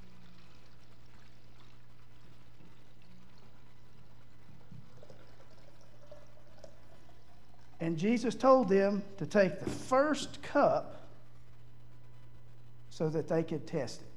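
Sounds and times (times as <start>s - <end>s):
water pouring into a pitcher: 0.0s - 11.0s
low hum: 0.0s - 14.1s
speech: 7.8s - 11.0s, 13.0s - 14.1s.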